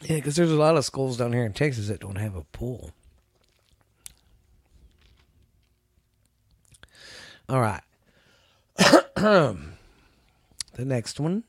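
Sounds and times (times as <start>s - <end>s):
speech: 0.1s - 3.0s, 7.5s - 7.9s, 8.8s - 9.7s, 10.8s - 11.4s
loud throat clearing: 8.8s - 9.8s.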